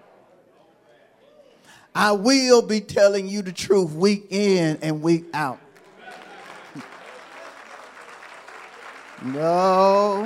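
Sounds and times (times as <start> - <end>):
speech: 2.0 - 5.6, 9.2 - 10.2
audience applause: 5.7 - 10.2.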